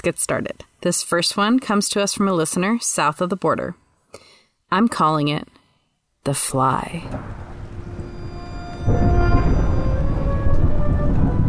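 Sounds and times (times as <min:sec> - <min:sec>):
speech: 0:00.0 - 0:05.6, 0:06.2 - 0:07.5
deep rumble of thunder: 0:06.8 - 0:11.4
faint sustained tones: 0:06.9 - 0:11.4
heavy rain: 0:07.0 - 0:11.4.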